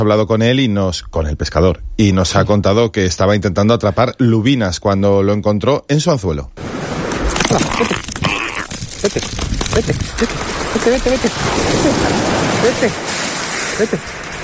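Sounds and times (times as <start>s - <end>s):
speech: 0.0s - 8.4s, 9.0s - 13.2s, 13.8s - 14.2s
sea water and surf rushing: 6.6s - 14.4s.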